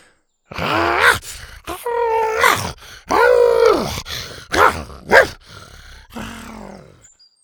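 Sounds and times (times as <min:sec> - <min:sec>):
young dinosaurs roaring: 0:00.5 - 0:07.0.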